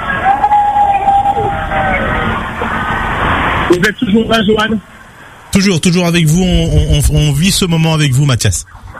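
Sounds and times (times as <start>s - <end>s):
French national police vehicle and motorcycle siren in a motorcade: 0.0s - 4.7s
broadband noise: 0.0s - 8.9s
speech: 3.7s - 4.9s, 5.5s - 8.9s.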